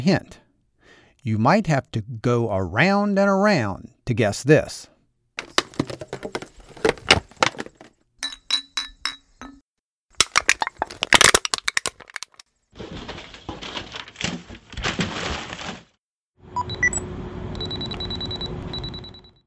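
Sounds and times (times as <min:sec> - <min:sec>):
speech: 0:00.0 - 0:00.4, 0:01.2 - 0:05.6
household recycling plastic bottle crackling: 0:05.4 - 0:07.9, 0:10.2 - 0:15.9
mixed paper rustling: 0:05.4 - 0:07.9, 0:10.2 - 0:16.0
aluminum can crunching: 0:05.4 - 0:08.9, 0:10.2 - 0:15.7
household recycling glass bottles clinking: 0:05.4 - 0:09.6, 0:10.2 - 0:12.4.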